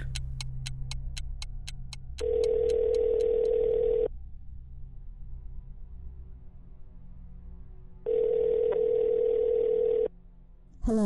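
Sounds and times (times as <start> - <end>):
phone dialing clicks: 0.0 - 4.0
ringback tones on an outgoing phone call: 2.2 - 4.1, 8.1 - 10.1.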